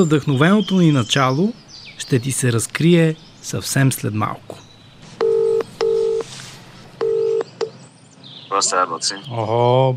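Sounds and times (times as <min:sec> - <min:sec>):
speech: 0:00.0 - 0:04.7, 0:08.6 - 0:09.9
telephone number dialed on a touch-tone keypad: 0:05.2 - 0:06.2, 0:07.0 - 0:07.7.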